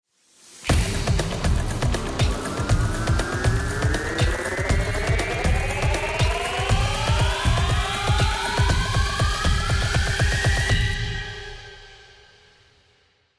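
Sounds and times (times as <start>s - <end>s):
bomb countdown: 0.7s - 11.0s.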